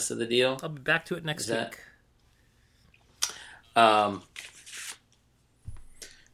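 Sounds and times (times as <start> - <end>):
speech: 0.0 - 1.9, 3.8 - 4.5
graph paper field-notes notebook pages rustling and flipping: 4.3 - 5.0.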